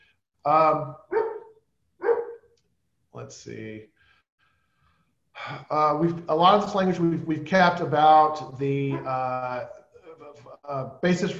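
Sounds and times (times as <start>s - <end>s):
speech: 0.4s - 1.1s, 3.2s - 4.0s, 5.4s - 9.8s, 10.6s - 11.3s
dog barking during an online meeting: 1.1s - 2.5s, 8.9s - 9.3s.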